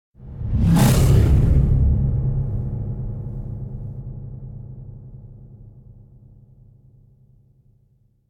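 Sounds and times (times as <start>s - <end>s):
heavy air rip whoosh: 0.2s - 3.6s.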